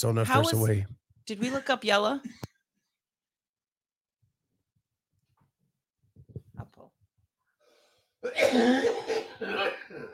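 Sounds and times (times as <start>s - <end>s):
speech: 0.0s - 2.5s, 8.2s - 10.1s
person coughing fit: 8.2s - 10.1s.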